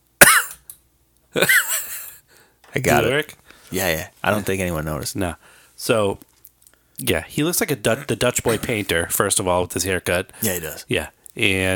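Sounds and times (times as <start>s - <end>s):
man coughing into a microphone: 0.2s - 0.6s, 8.0s - 8.9s
speech: 1.3s - 1.7s, 2.8s - 6.3s, 7.0s - 11.7s.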